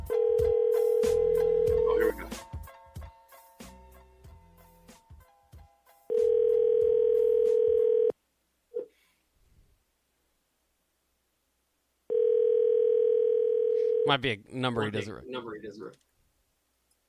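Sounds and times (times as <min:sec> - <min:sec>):
phone ringback tone of a call placed from a studio: 0:00.1 - 0:02.2, 0:06.1 - 0:08.1, 0:12.1 - 0:14.1
speech: 0:14.1 - 0:16.1.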